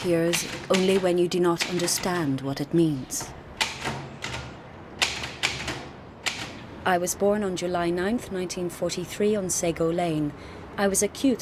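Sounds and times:
manual typewriter key clacks: 0.0s - 2.3s, 3.2s - 6.6s
speech: 0.0s - 3.4s, 6.8s - 11.4s
manual typewriter carriage slid back for a new line: 0.0s - 6.6s.

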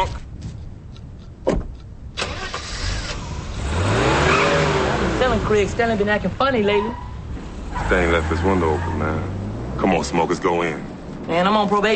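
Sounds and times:
car door clunking: 1.4s - 1.8s
car engine starting and revving: 2.2s - 11.9s
speech: 5.5s - 7.1s, 7.8s - 11.9s.

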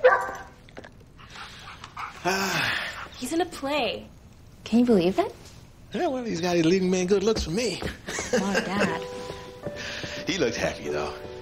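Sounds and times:
dog barking: 0.0s - 0.6s
speech: 2.2s - 9.1s, 9.7s - 11.3s
laughter: 7.9s - 9.1s.

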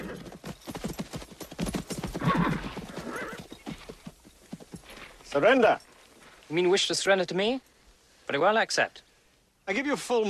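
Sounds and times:
horses galloping into a forest clearing: 0.0s - 5.8s
horse neighing: 2.1s - 3.5s
speech: 5.3s - 5.9s, 6.5s - 7.7s, 8.3s - 9.1s, 9.7s - 10.2s.

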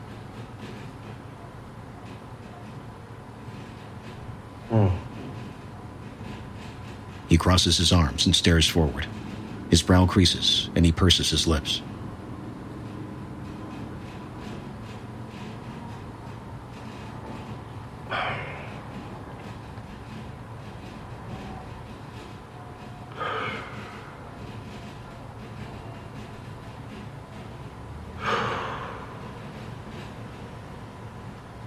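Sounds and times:
low hum: 0.0s - 31.6s
slow deep breaths: 4.7s - 5.4s, 18.1s - 18.9s, 23.1s - 24.3s, 28.2s - 30.1s
speech: 7.4s - 11.9s.

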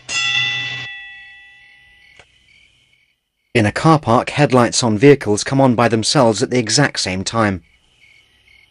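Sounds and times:
fire bell ringing: 0.0s - 2.1s
speech: 3.6s - 7.7s.

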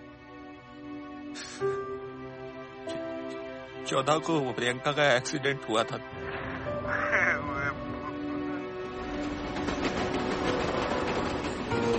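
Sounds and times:
speech: 1.4s - 1.8s, 3.9s - 6.4s
train passing right behind: 6.2s - 11.9s.

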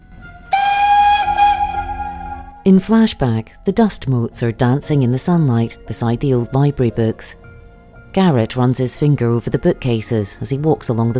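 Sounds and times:
train whistle as a train enters a tunnel: 0.4s - 2.7s
speech: 2.6s - 7.4s, 8.1s - 11.1s.

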